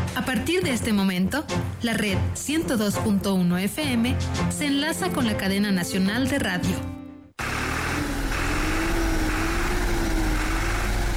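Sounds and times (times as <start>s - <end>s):
speech: 0.2s - 7.0s
working tractor engine running: 7.4s - 11.1s.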